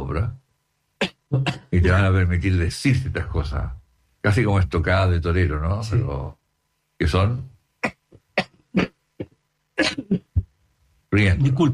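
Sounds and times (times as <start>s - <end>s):
speech: 0.1s - 0.4s, 1.3s - 6.4s, 7.0s - 7.5s, 9.8s - 10.2s, 11.1s - 11.7s
coughing fit: 1.0s - 2.0s, 7.8s - 10.5s.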